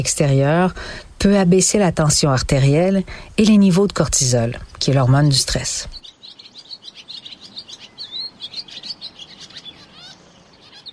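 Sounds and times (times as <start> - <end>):
speech: 0.0 - 6.0
soft hiss: 0.0 - 10.9
several birds chirping and singing: 3.4 - 10.9.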